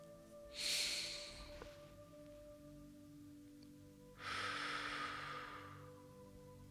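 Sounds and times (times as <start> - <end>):
slow breathing in and out during a guided mantra meditation: 0.5 - 2.0, 4.1 - 6.2.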